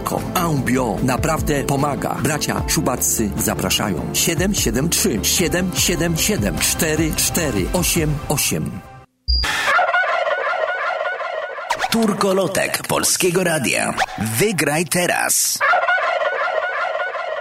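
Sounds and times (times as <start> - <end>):
speech: 0.1 - 8.9, 11.9 - 15.7
turkey gobbling: 9.4 - 12.2, 15.6 - 17.3.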